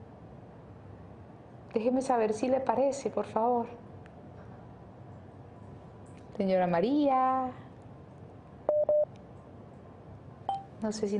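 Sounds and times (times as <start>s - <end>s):
speech: 1.7s - 3.9s, 6.4s - 7.6s, 10.8s - 11.1s
video call ringing tone on a phone: 8.7s - 9.1s.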